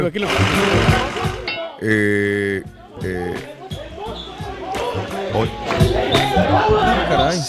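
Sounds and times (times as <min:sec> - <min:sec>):
speech: 0:00.0 - 0:04.2, 0:05.4 - 0:07.4
crowd of agitated voices in a scuffle: 0:00.3 - 0:01.8, 0:02.8 - 0:07.4.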